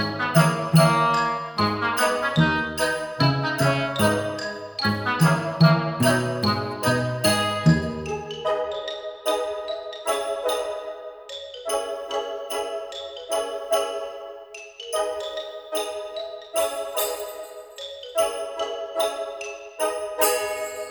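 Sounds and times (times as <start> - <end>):
lower musical accompaniment: 0.0 - 8.7
bright tinkling instrumental tune of bell-like notes: 0.0 - 20.8.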